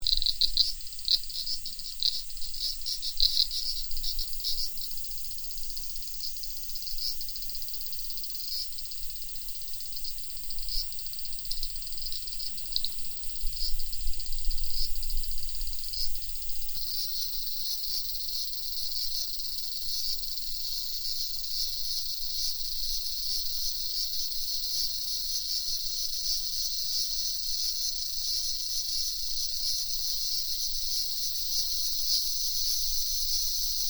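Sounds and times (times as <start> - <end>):
cicadas buzzing: 0.0 - 33.8.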